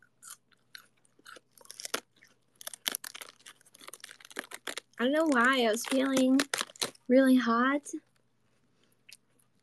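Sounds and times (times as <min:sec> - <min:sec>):
chewing cold crispy lettuce from the fridge: 0:00.0 - 0:07.1
speech: 0:05.0 - 0:06.5, 0:07.1 - 0:08.1.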